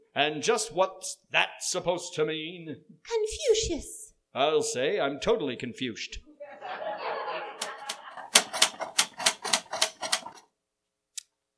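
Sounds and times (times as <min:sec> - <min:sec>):
speech: 0:00.2 - 0:06.8
soft laughter: 0:06.3 - 0:09.5
typewriter keys clacking at a table: 0:07.6 - 0:10.4.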